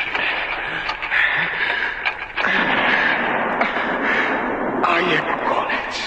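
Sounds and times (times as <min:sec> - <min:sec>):
stormy wind roaring: 0:00.2 - 0:06.0
ship firing distress alarm cannon shots: 0:02.4 - 0:06.0
voices: 0:02.4 - 0:06.0.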